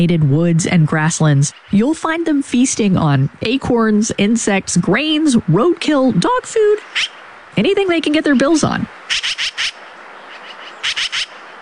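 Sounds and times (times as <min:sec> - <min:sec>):
speech: 0:00.0 - 0:09.6
yellow-billed magpie faint softer chatter: 0:01.2 - 0:02.2, 0:06.7 - 0:11.6
yellow-billed magpie harsh scratchy calls: 0:09.1 - 0:11.4.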